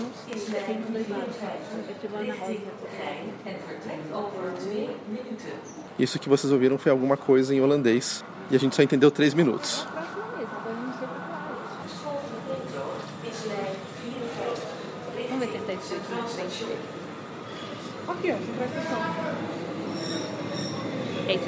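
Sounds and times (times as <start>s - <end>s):
people chattering on the platform: 0.0s - 21.4s
speech: 0.5s - 10.0s
train wheels squealing arriving at a station: 19.8s - 21.4s.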